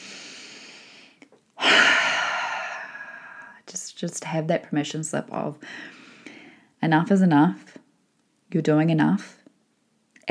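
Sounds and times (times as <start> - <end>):
deep breath in a guided breathing moment: 0.0 - 3.6, 5.6 - 6.7
speech: 3.7 - 6.0, 6.8 - 7.8, 8.5 - 9.4.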